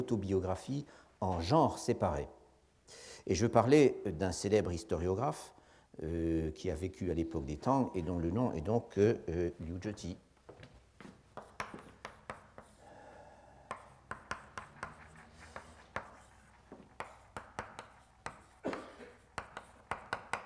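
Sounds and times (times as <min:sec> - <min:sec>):
speech: 0:00.0 - 0:10.2
tapping and scratching of a simplified Chinese character written on a board: 0:11.3 - 0:12.8, 0:13.7 - 0:20.4.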